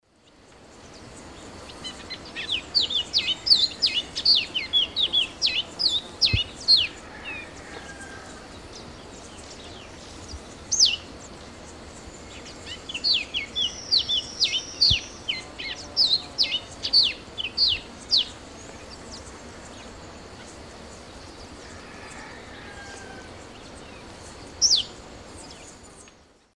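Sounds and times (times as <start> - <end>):
Sporophila castaneiventris singing in Eastern Lowlands of South America: 0.2 - 26.5.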